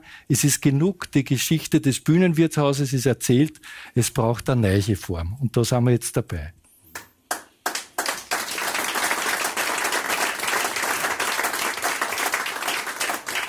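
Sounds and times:
speech: 0.0 - 6.6
sizable audience applauding a speaker: 7.6 - 13.4.

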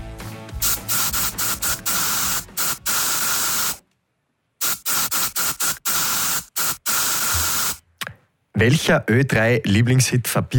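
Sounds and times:
deodorant spray can hissing: 0.6 - 3.8, 4.6 - 7.8
speech: 8.6 - 10.5.

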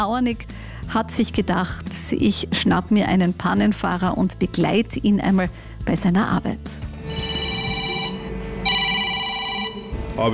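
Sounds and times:
speech: 0.0 - 6.9, 10.2 - 10.3
work mobile phone ringing with electronic ringtone: 7.0 - 10.0.

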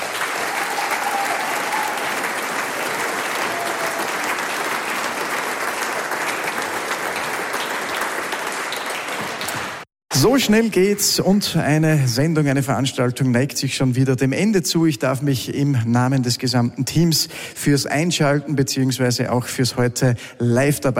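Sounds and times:
large audience applause: 0.0 - 9.9
speech: 10.2 - 20.9.

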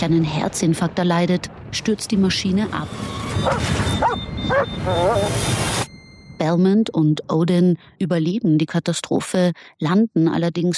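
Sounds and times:
speech: 0.0 - 5.8, 6.4 - 10.7
dog yelping and whimpering: 3.4 - 5.4.

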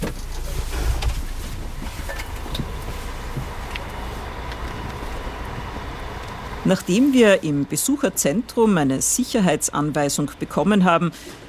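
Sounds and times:
bus clunks and rattles as it halts on the CERN site in France: 0.0 - 6.5
bus heavy engine rumble: 0.0 - 11.4
speech: 6.7 - 11.4.

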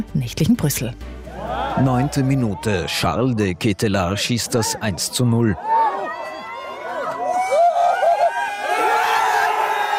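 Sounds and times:
speech: 0.0 - 5.9
many voices of football fans shouting and whooping together: 1.3 - 3.1, 4.1 - 9.9
crowd of football fans cheering in relief after goal: 1.3 - 9.9.

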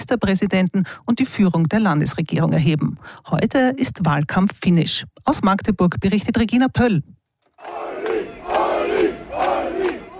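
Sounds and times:
speech: 0.1 - 7.8
large crowd of fans cheering and chanting at an election rally: 7.6 - 10.1.

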